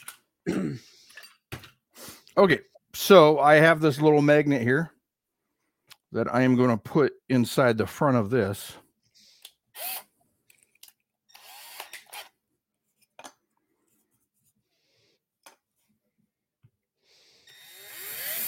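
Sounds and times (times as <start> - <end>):
speech: 2.4 - 5.0, 6.1 - 8.8
small drill boring into soft rubbery silicone mat: 9.8 - 10.1, 11.3 - 12.4, 17.4 - 18.4.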